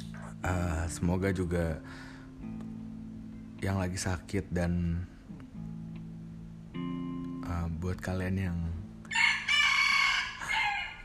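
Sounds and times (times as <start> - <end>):
speech: 0.4 - 2.6, 3.6 - 5.1, 7.5 - 8.7
rooster crowing: 9.1 - 11.0.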